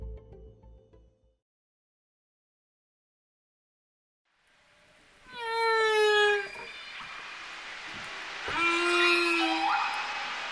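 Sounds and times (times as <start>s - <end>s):
whale calls underwater in the ocean: 5.3s - 7.2s, 8.4s - 10.5s.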